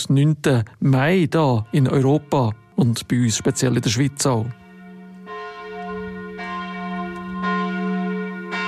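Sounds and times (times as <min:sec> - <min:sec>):
speech: 0:00.0 - 0:04.6
church bells ringing to mark the end of the Second World War in Europe: 0:00.8 - 0:08.6.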